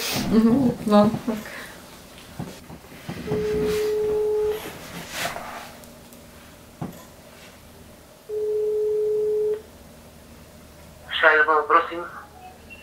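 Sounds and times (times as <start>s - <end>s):
speech: 0.2s - 1.6s
telephone ringback tone on a call placed during a quiz game: 3.3s - 4.7s, 8.3s - 9.6s.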